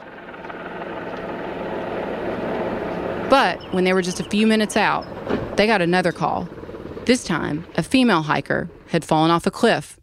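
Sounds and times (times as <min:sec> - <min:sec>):
helicopter flying with rotor thump and engine roar: 0:00.0 - 0:09.8
speech: 0:03.3 - 0:10.0.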